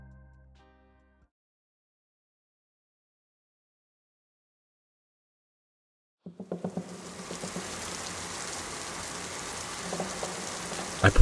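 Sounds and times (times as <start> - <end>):
hissing rain falling on leaves: 6.3 - 11.2
speech: 11.0 - 11.2.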